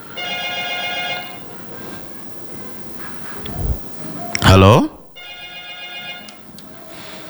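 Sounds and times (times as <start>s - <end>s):
telephone ringing with a bright electronic tone: 0.0s - 2.5s, 5.2s - 6.6s
speech: 4.5s - 4.9s.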